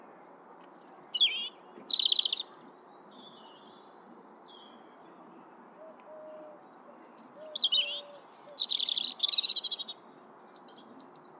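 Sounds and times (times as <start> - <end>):
European robin Erithacus rubecula singing: 0.7 - 2.5, 6.8 - 11.3.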